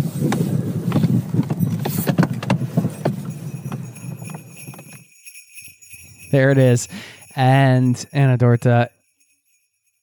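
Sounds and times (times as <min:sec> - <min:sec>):
horse hooves clip-clopping: 0:00.3 - 0:05.1
sleigh bells jingling on a horse-drawn sleigh ride: 0:01.6 - 0:10.0
speech: 0:06.3 - 0:09.0.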